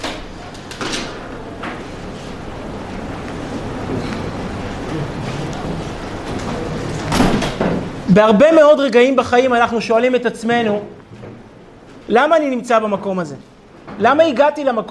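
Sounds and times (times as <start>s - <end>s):
door opening: 0.0s - 1.9s, 6.2s - 8.0s
speech: 8.2s - 11.0s, 12.1s - 14.9s.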